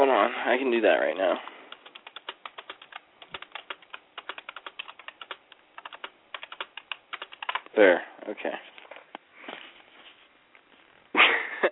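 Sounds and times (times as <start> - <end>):
speech: 0.2 - 1.6, 7.8 - 8.7
rapid typing on a keyboard: 1.7 - 7.7.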